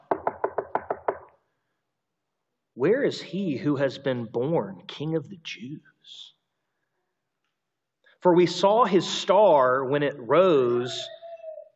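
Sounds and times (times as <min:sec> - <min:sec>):
knocking on a wooden door: 0:00.0 - 0:01.3
speech: 0:02.8 - 0:06.4, 0:08.2 - 0:11.2.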